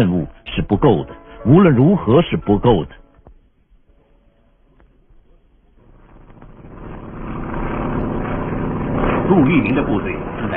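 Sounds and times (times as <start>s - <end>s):
speech: 0.0s - 3.0s, 9.4s - 10.5s
propeller airplane droning overhead: 5.8s - 10.5s.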